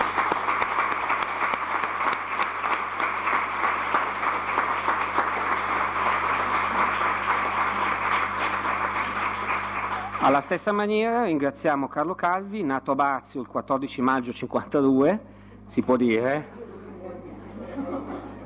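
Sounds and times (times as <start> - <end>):
crowd applause: 0.0 - 10.9
speech: 10.3 - 16.6
laughter: 16.5 - 18.4.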